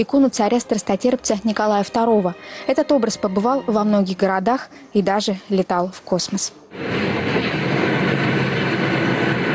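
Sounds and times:
speech: 0:00.0 - 0:07.6
train rolling along rails: 0:06.8 - 0:09.5.

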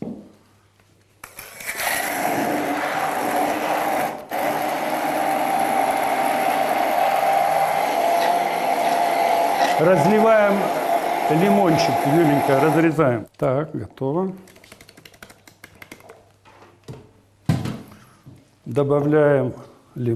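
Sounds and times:
kitchen blender running with high-pitched motor drone: 0:01.6 - 0:13.0
speech: 0:09.8 - 0:14.6, 0:18.7 - 0:20.1.

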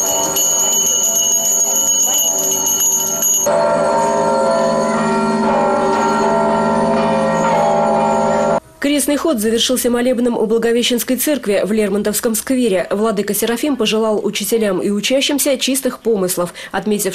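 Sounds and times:
church bells ringing: 0:00.0 - 0:08.6
speech: 0:08.9 - 0:17.1.

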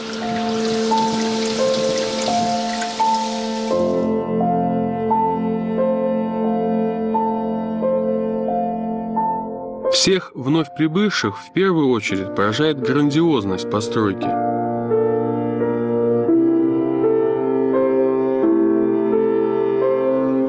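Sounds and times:
water from a holy spring running and splashing: 0:00.0 - 0:04.1
soft sustained music: 0:00.0 - 0:20.4
speech: 0:10.0 - 0:14.4.

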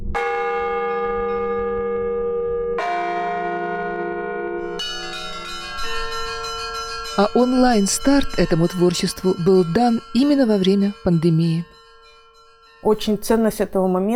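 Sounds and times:
church bells ringing from a bell tower: 0:00.2 - 0:14.1
speech: 0:07.2 - 0:11.7, 0:12.8 - 0:14.1.

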